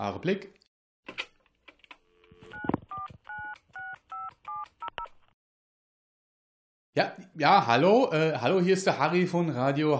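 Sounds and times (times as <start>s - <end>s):
speech: 0.0s - 0.6s, 7.0s - 9.9s
two-tone DTMF beeps of a telephone number dialed on a keypad: 2.1s - 5.1s.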